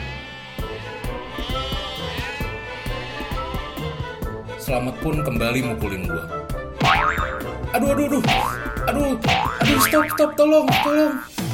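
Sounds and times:
goat bleating while pulling on a rope: 0:00.0 - 0:04.3
speech: 0:04.7 - 0:06.4, 0:07.7 - 0:11.3.

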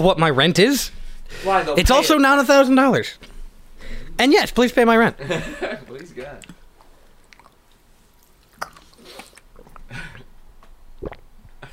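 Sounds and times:
speech: 0:00.0 - 0:03.3, 0:04.2 - 0:06.6
squishy mouth noises: 0:06.4 - 0:11.7
wet throat swallow with gulping clicks: 0:08.6 - 0:10.3, 0:11.0 - 0:11.7.

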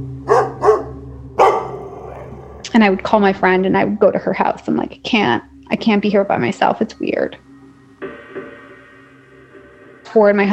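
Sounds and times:
low steady hum: 0:00.0 - 0:10.5
dog barking: 0:00.3 - 0:02.5
speech: 0:02.8 - 0:07.5, 0:10.1 - 0:10.5.

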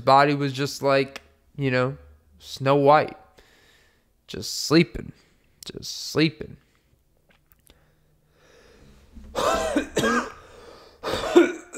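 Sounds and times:
speech: 0:00.0 - 0:03.2, 0:04.3 - 0:06.6
coughing fit: 0:09.2 - 0:11.7.

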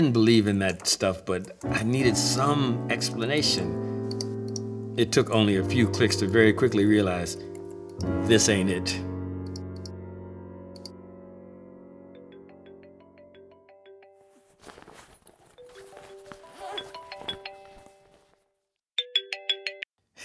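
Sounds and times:
speech: 0:00.0 - 0:03.9, 0:05.0 - 0:09.1
phone ringtone melody of stepped electronic tones: 0:12.2 - 0:14.4, 0:19.0 - 0:19.9.

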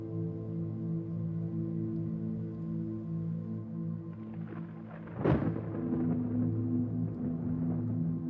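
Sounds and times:
steady low drone: 0:00.0 - 0:08.2
deep thunder rumbling: 0:04.3 - 0:08.2
sharp thunder crack: 0:05.0 - 0:06.6.

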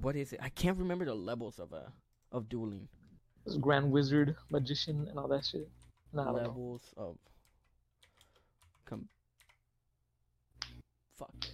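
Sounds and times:
speech: 0:00.0 - 0:07.3, 0:08.9 - 0:09.2
typing on a computer keyboard: 0:04.4 - 0:09.6.

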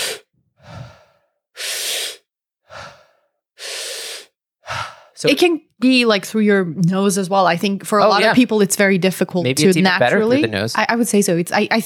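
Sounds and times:
deep rapid breathing exercise: 0:00.0 - 0:05.2
speech: 0:05.2 - 0:11.8.

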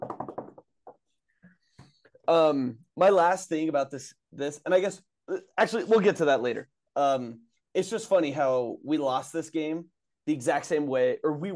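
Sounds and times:
knocking on wood: 0:00.0 - 0:00.6
speech: 0:02.3 - 0:11.5.

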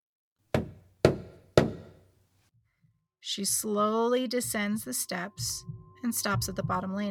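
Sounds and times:
firm knocks on a front door: 0:00.6 - 0:02.0
speech: 0:03.3 - 0:07.0.

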